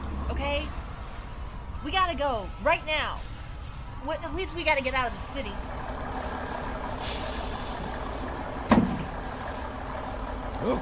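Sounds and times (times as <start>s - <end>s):
bus idling: 0.0s - 10.8s
speech: 0.4s - 0.8s, 1.8s - 3.4s, 4.0s - 6.0s, 10.6s - 10.8s
sharp burst of released air from bus brakes: 7.0s - 8.6s
bus air brakes hissing: 7.0s - 9.0s.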